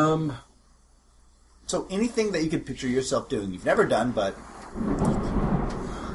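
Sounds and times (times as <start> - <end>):
speech: 0.0 - 0.5, 1.7 - 5.4
storm noise: 3.7 - 6.1
deep rumble of thunder: 4.3 - 6.1.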